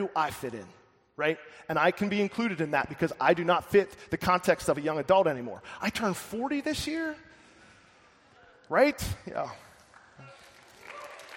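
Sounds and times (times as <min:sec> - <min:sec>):
speech: 0:00.0 - 0:07.4, 0:08.7 - 0:09.6
audience clapping: 0:09.7 - 0:11.3.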